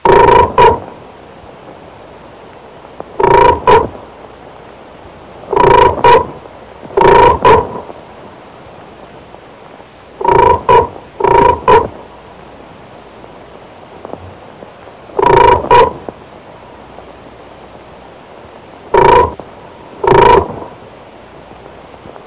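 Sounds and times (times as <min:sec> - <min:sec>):
frog croaking: 0:00.0 - 0:00.9, 0:03.2 - 0:04.0, 0:05.5 - 0:06.4, 0:07.0 - 0:07.9, 0:10.2 - 0:12.0, 0:15.2 - 0:16.0, 0:18.9 - 0:19.4, 0:20.0 - 0:20.7.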